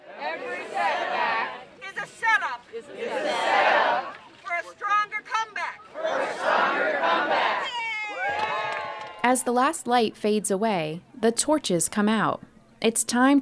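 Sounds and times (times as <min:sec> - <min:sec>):
crowd of over 200 people roaring and shouting at a rally in a torrential downpour: 0:00.0 - 0:05.0, 0:05.8 - 0:09.3
speech: 0:09.3 - 0:13.3.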